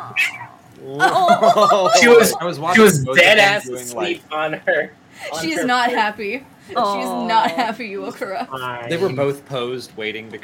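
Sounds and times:
cat meowing: 0.0 - 0.6
cat chirp: 0.0 - 0.7
speech: 0.1 - 10.4
laughter: 0.8 - 3.6.

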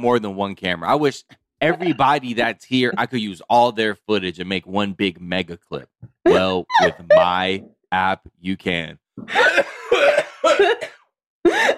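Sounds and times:
speech: 0.0 - 11.7
laughter: 1.6 - 3.4, 6.3 - 7.6
person coughing into the mic in loud harsh hacking bursts: 6.3 - 7.5, 9.3 - 11.7.

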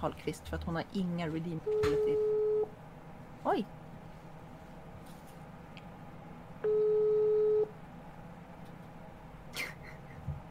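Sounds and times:
speech: 0.0 - 2.4, 3.4 - 3.8
phone ringing with a loud electronic tone: 1.6 - 2.7, 6.6 - 7.7.

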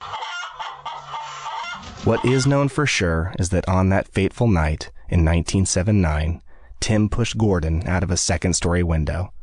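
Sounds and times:
chicken clucking with short squawks: 0.0 - 2.6
speech: 2.0 - 9.4.

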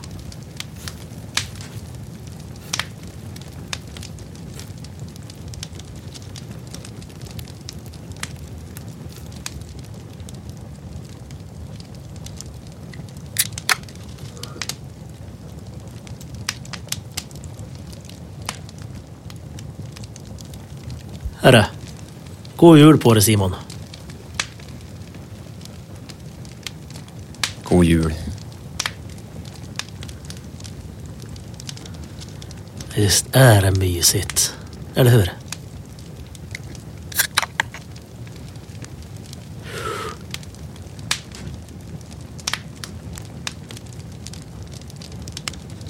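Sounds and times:
fireplace fire crackling: 0.0 - 45.8
speech: 21.5 - 21.7, 22.6 - 23.7, 27.7 - 28.4, 33.0 - 35.4.

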